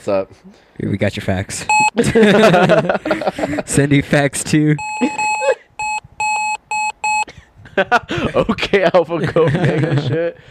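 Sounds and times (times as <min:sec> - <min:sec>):
speech: 0:00.0 - 0:05.4, 0:07.8 - 0:10.4
laughter: 0:01.9 - 0:03.8, 0:05.0 - 0:05.7, 0:07.7 - 0:10.4
electronic-sounding car horn beeps: 0:04.8 - 0:07.3.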